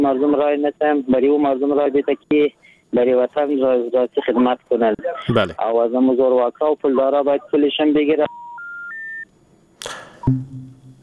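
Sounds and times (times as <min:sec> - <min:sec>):
speech: 0:00.0 - 0:08.4, 0:10.3 - 0:10.6
low hum: 0:10.2 - 0:11.0
two-step electronic beep of a radio listener's phone call being cut off: 0:10.2 - 0:11.0.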